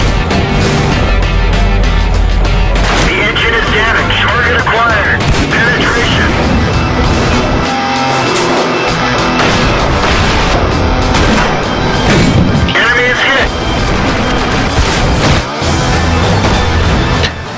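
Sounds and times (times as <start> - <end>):
tank battle explosions from an online tactical tank shooter video game: 0.0 - 17.5.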